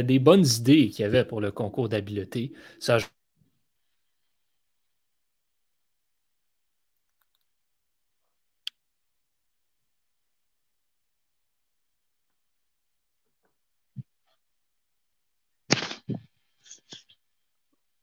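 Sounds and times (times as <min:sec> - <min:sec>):
speech: 0:00.0 - 0:03.2
isolated clicks: 0:07.0 - 0:07.5.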